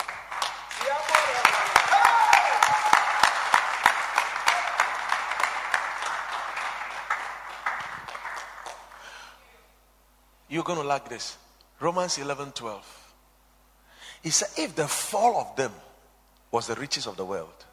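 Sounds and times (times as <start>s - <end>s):
large group applauding: 0.0s - 9.2s
scattered cheers: 0.7s - 3.6s, 4.3s - 5.1s
speech: 10.6s - 13.0s, 14.2s - 15.9s, 16.5s - 17.7s.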